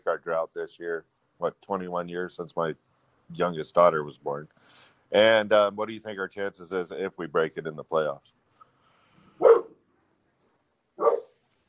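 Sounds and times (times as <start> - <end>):
speech: 0.2 - 8.4
puppy barking: 9.4 - 9.8, 11.0 - 11.4.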